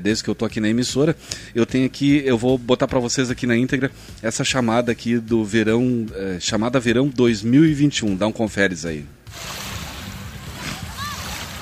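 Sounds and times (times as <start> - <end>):
speech: 0.0 - 9.6
ocean waves washing against a beach shore: 9.3 - 11.6.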